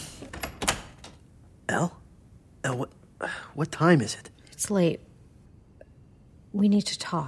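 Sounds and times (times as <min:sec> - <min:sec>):
door thudding and rattling: 0:00.3 - 0:01.2
speech: 0:03.6 - 0:05.1, 0:06.5 - 0:07.2.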